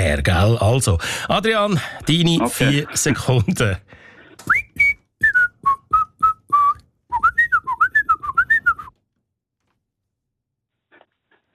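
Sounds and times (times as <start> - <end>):
speech: 0.2 - 4.6
laughter: 2.0 - 3.9
person whistling a late-1960s pop song: 4.4 - 8.9.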